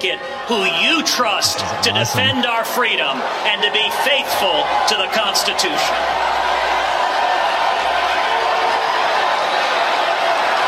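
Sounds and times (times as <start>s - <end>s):
speech: 0.0s - 6.6s
large standing crowd in New York screaming, shouting and booing: 1.4s - 3.4s, 5.8s - 10.6s.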